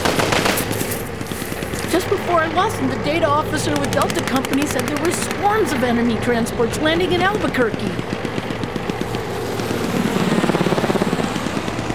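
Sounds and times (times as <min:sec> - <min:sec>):
helicopter rotor thumping overhead: 0:00.0 - 0:11.9
speech: 0:02.0 - 0:08.3.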